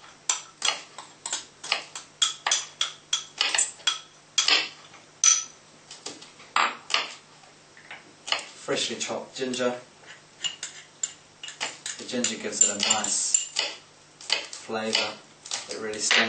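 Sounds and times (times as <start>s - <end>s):
utensil clicking and scraping as tofu is mixed with corn flour marinade in a bowl: 0.3s - 4.6s, 9.5s - 16.2s
speech: 8.7s - 9.9s, 12.1s - 13.7s, 14.7s - 16.2s.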